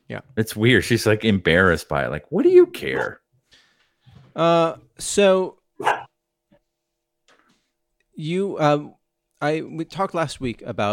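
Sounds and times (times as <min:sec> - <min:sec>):
speech: 0:00.1 - 0:03.2, 0:04.4 - 0:06.1, 0:08.2 - 0:10.9
dog barking: 0:05.8 - 0:06.2.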